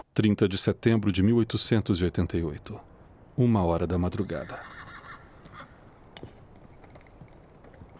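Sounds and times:
speech: 0.2 - 4.8
horse hooves clip-clopping while pulling a cart into an alley in Whitechapel: 4.8 - 7.9.

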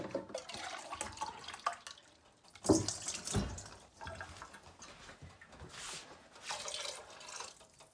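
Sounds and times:
water pouring from a can into a stew pot: 0.1 - 4.1, 6.5 - 7.9.

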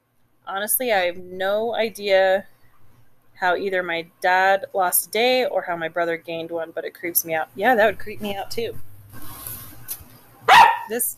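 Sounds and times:
speech: 0.5 - 2.5, 3.4 - 8.9, 10.9 - 11.1
dog barking: 10.5 - 11.0.

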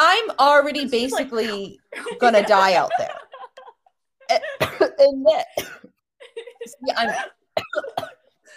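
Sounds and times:
speech: 0.4 - 3.1, 4.3 - 5.8, 6.6 - 8.5
laughter: 0.8 - 4.3, 6.2 - 7.4
person coughing: 4.3 - 6.0, 6.9 - 8.4.

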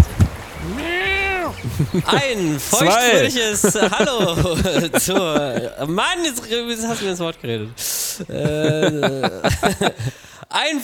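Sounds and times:
soft thumps or handling noises: 0.0 - 2.3
single drawn-out cat meow: 0.6 - 1.6
laughter: 0.6 - 10.6
speech: 1.8 - 10.8.

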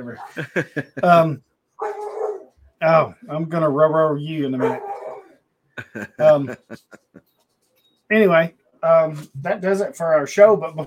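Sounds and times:
laughter: 0.0 - 1.4, 5.8 - 7.3
speech: 0.0 - 1.5, 2.8 - 4.9, 5.9 - 7.3, 8.1 - 10.8
floppy-eared dog barking: 1.8 - 2.5, 4.6 - 5.4.

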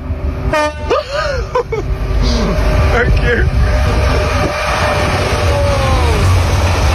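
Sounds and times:
steady rumbling noise: 0.0 - 6.9
train horn tooting: 0.5 - 1.0, 3.0 - 5.6
people laughing: 0.9 - 2.6
voices: 2.2 - 6.4.

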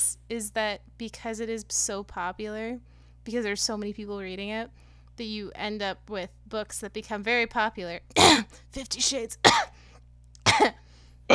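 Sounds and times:
speech: 0.0 - 9.7, 10.6 - 10.8
short throaty harsh cough: 8.2 - 8.6, 9.4 - 9.7, 10.4 - 11.3.

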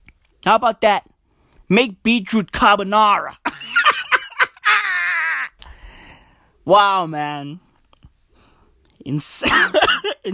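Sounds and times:
speech: 0.4 - 1.1, 1.7 - 3.8, 6.6 - 7.6, 9.0 - 10.3
laughter: 3.5 - 5.5
person coughing: 9.4 - 10.3.

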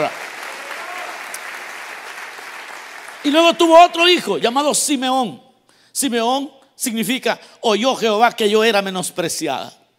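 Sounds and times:
church audience applauding: 0.0 - 3.6
speech: 3.2 - 9.8.

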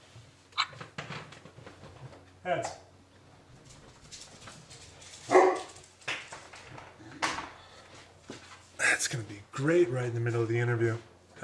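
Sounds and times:
speech: 2.4 - 2.8, 9.1 - 11.1
Mastiff and Corgi barking: 5.3 - 5.8.

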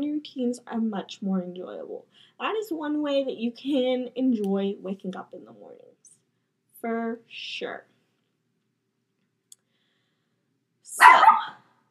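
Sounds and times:
speech: 0.2 - 5.9, 6.8 - 7.9, 11.0 - 11.6
single loud dog bark: 11.0 - 11.6.

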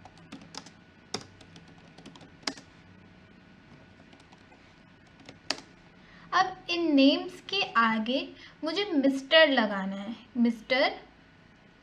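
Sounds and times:
computer keyboard typing as names are entered: 0.0 - 2.7, 4.0 - 5.7
speech: 6.4 - 11.0.

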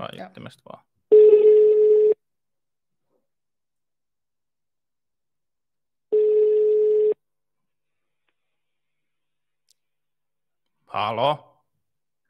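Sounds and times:
speech: 0.0 - 0.9, 11.0 - 11.5
outgoing phone call ringback tones: 1.1 - 2.2, 6.1 - 7.2.

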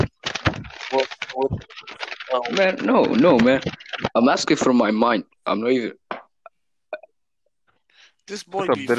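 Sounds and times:
paper rustling and crinkling: 0.0 - 4.7
speech: 0.9 - 6.0, 8.3 - 8.9.

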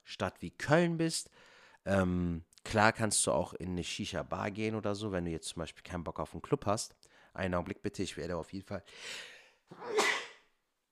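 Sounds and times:
speech: 0.1 - 10.0
person sneezing: 9.7 - 10.5.

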